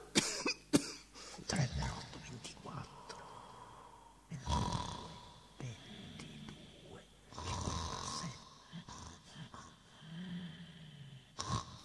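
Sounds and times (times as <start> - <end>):
person coughing: 0.0 - 1.1
faint hum: 0.0 - 11.8
faint murmuring: 1.4 - 11.4
man snoring: 3.0 - 11.8.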